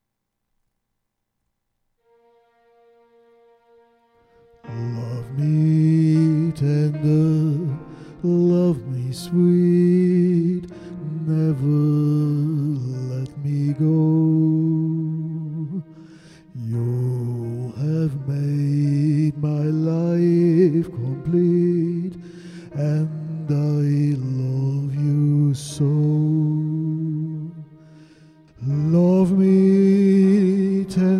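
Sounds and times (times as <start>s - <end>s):
person singing: 4.7s - 31.1s.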